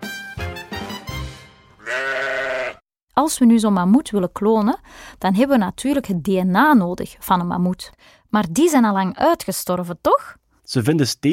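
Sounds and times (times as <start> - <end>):
sheep bleating: 1.8 - 2.8
speech: 3.2 - 11.3.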